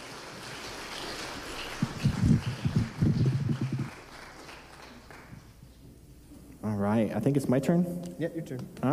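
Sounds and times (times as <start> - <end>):
church audience applauding: 0.0 - 5.6
hiss: 0.0 - 8.9
speech: 6.9 - 8.9.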